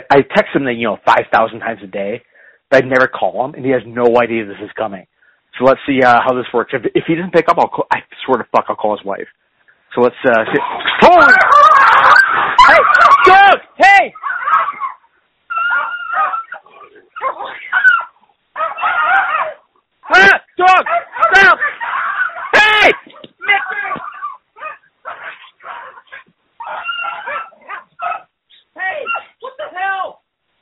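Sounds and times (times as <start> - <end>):
speech: 0.1 - 11.5, 12.6 - 14.2, 20.1 - 21.8
two dogs fighting over a bone, snarling, yelping and barking: 10.5 - 13.4, 14.1 - 29.4
excited human voices shouting: 10.9 - 14.1, 19.0 - 24.0.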